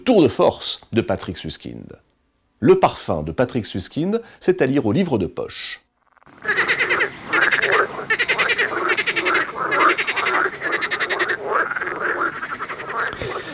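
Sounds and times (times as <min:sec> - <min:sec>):
speech: 0:00.0 - 0:05.8
frog croaking in rattling pulsed calls: 0:05.8 - 0:13.5.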